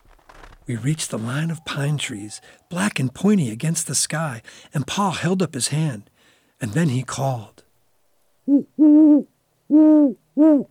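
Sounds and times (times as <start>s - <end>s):
speech: 0.7s - 7.6s, 8.5s - 10.6s
great horned owl hooting: 0.8s - 2.9s, 8.5s - 10.6s.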